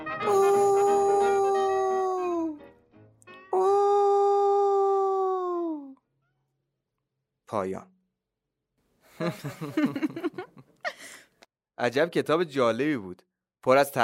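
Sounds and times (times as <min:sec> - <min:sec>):
wolf howling: 0:00.2 - 0:02.6, 0:03.6 - 0:05.9
speech: 0:07.5 - 0:07.9, 0:09.2 - 0:10.5, 0:11.8 - 0:14.0
laughter: 0:09.2 - 0:11.2.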